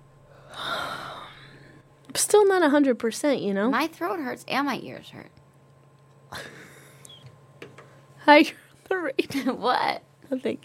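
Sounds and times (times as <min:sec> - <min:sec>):
person yawning: 0:00.4 - 0:01.7
speech: 0:02.2 - 0:05.4, 0:08.3 - 0:10.6.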